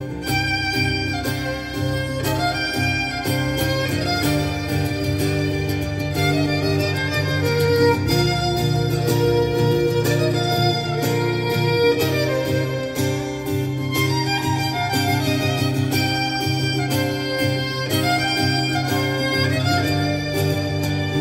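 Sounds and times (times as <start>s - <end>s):
violin ringtone melody: 0.0s - 21.1s.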